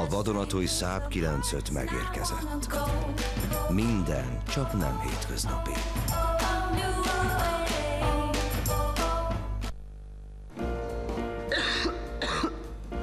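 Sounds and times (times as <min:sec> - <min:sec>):
music: 0:00.0 - 0:09.8, 0:10.5 - 0:13.0
speech: 0:00.1 - 0:07.1
person coughing: 0:11.5 - 0:12.6.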